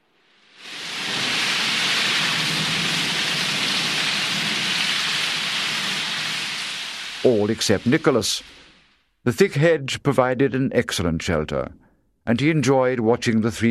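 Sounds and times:
heavy downpour of rain: 0.4 - 9.0
speech: 7.5 - 8.6, 9.2 - 13.6.

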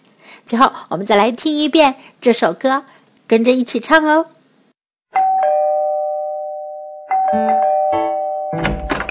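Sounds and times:
speech: 0.4 - 4.3, 7.3 - 7.5
doorbell ding-dong chime: 5.2 - 9.0.

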